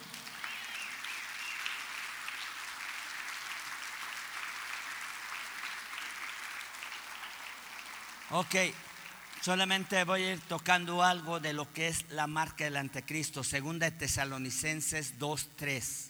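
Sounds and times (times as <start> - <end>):
audience applauding: 0.0 - 10.6
speech: 8.3 - 8.8, 9.4 - 16.0.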